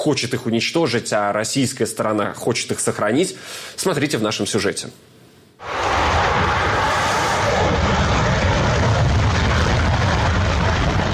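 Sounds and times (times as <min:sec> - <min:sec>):
speech: 0:00.0 - 0:05.7
Su-57 fighter jet roaring during takeoff: 0:05.6 - 0:11.1.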